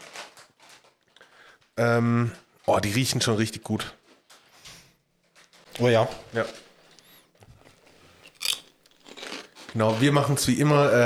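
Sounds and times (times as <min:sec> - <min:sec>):
speech: 0:01.8 - 0:04.0, 0:05.8 - 0:06.6, 0:09.8 - 0:11.0
crunchy snack chips being bitten and chewed: 0:06.8 - 0:09.7.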